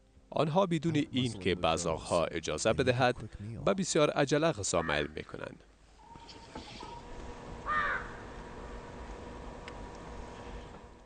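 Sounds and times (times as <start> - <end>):
steady low outdoor hum: 0.0 - 11.0
speech: 0.3 - 5.7
crow cawing: 4.8 - 5.1, 7.6 - 8.4.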